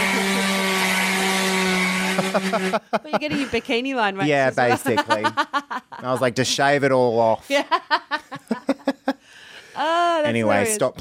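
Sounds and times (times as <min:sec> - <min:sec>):
power drill whirring: 0:00.0 - 0:02.8
laughter: 0:02.0 - 0:03.9, 0:04.6 - 0:06.6, 0:07.5 - 0:09.2
speech: 0:02.2 - 0:08.8, 0:09.8 - 0:10.9.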